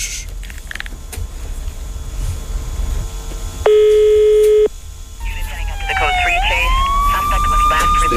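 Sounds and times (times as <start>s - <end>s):
rising wavering siren-like electronic tone: 3.5s - 8.1s
telephone ringback tone on a live call: 3.7s - 4.7s.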